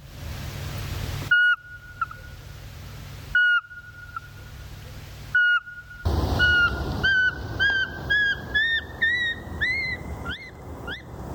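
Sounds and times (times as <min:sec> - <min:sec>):
Eurasian pygmy owl calls: 0:01.3 - 0:02.2, 0:03.4 - 0:04.3, 0:05.4 - 0:11.2.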